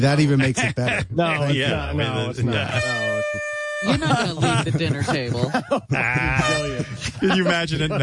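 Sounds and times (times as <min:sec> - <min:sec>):
laughter: 0:00.0 - 0:08.0
speech: 0:00.0 - 0:08.0
short steady air horn blast: 0:02.5 - 0:04.5, 0:06.4 - 0:07.2.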